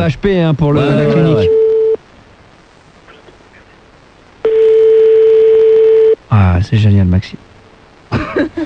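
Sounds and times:
speech: 0.0s - 1.6s, 6.3s - 7.5s, 8.1s - 8.6s
telephone ringback tone: 1.0s - 2.0s, 4.4s - 6.2s.

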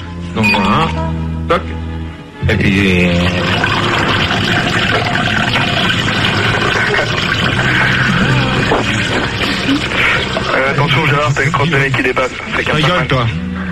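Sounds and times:
speech: 0.4s - 1.8s, 2.4s - 3.9s, 4.5s - 6.0s, 6.9s - 13.7s
cola pouring into a glass: 3.0s - 11.3s
ice clinking in a glass: 3.2s - 10.9s.

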